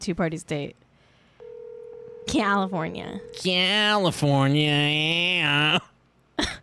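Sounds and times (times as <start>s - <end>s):
speech: 0.0s - 0.9s, 2.3s - 6.6s
steady low telephone tone: 1.4s - 2.4s.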